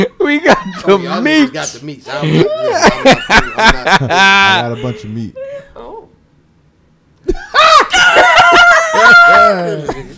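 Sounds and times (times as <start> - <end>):
speech: 0.0 - 5.5, 9.0 - 10.1
laughter: 2.2 - 5.2, 7.3 - 10.1
person letting out a shrill wavering screech: 7.3 - 9.9.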